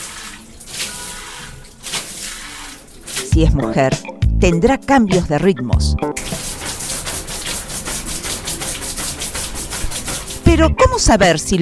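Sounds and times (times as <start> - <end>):
shower running with hissing spray of water: 0.0 - 3.4, 6.0 - 11.6
speech: 3.4 - 6.4, 10.5 - 11.6.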